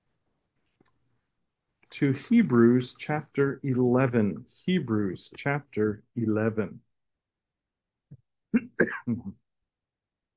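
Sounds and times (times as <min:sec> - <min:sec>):
speech: 0:02.0 - 0:06.9, 0:08.8 - 0:09.4
preacher clearing throat: 0:08.6 - 0:09.3
preacher coughing: 0:08.6 - 0:09.3.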